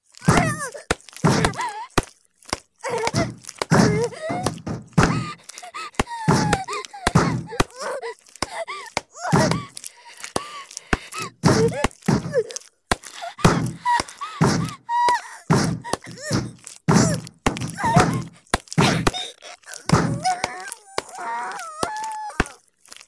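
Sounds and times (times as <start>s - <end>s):
tapping for ASMR: 0.2s - 2.1s, 2.8s - 22.6s.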